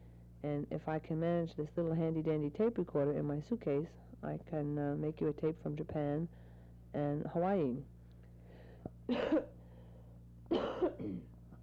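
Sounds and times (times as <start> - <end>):
speech: 0.4 - 7.9, 9.1 - 9.6, 10.5 - 11.3
person coughing harshly: 9.1 - 9.6, 10.5 - 11.3.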